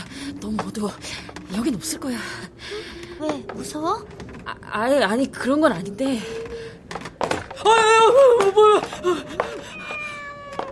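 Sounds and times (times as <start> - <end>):
speech: 0.4 - 2.6, 3.2 - 6.5, 7.6 - 9.8
cat meowing: 9.7 - 10.7.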